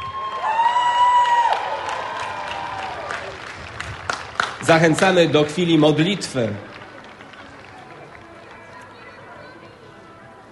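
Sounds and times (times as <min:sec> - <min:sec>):
voices cheering and whooping: 0:00.0 - 0:03.4
large crowd applauding: 0:00.0 - 0:09.3
speech: 0:04.6 - 0:06.7.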